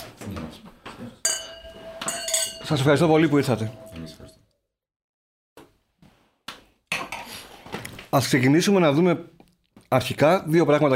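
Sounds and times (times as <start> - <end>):
wine glasses clinking in a toast: 1.2 - 4.2
speech: 2.7 - 3.9, 8.1 - 10.9.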